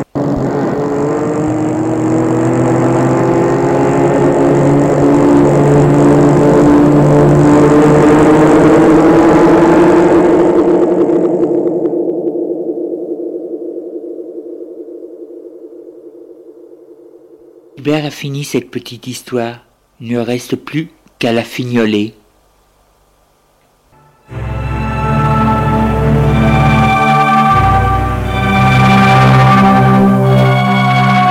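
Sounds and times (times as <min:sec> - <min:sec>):
car engine droning while driving at speed: 0:00.0 - 0:16.7, 0:24.0 - 0:31.3
speech: 0:18.0 - 0:22.2.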